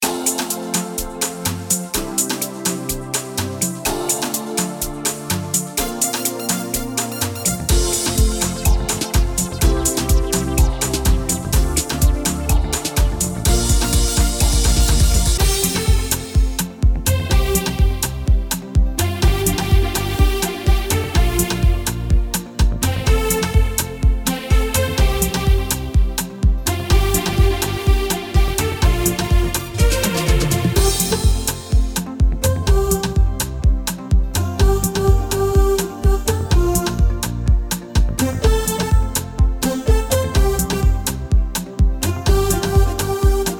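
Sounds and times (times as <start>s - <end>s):
Afro pop music: 0.0s - 43.5s.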